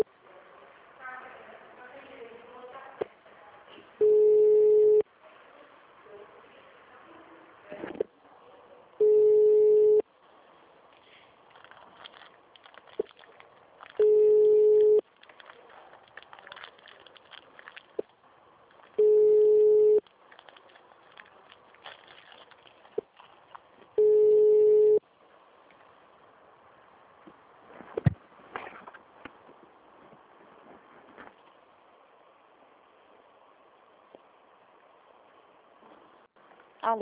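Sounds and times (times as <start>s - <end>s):
noise: 0.0s - 36.9s
phone ringback tone of an unanswered call: 4.0s - 5.0s, 9.0s - 10.0s, 14.0s - 15.0s, 19.0s - 20.0s, 24.0s - 25.0s.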